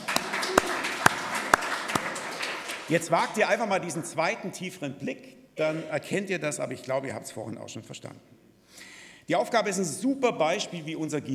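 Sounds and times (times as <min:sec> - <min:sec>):
small audience clapping: 0:00.0 - 0:04.2
speech: 0:02.9 - 0:08.4, 0:09.3 - 0:11.3.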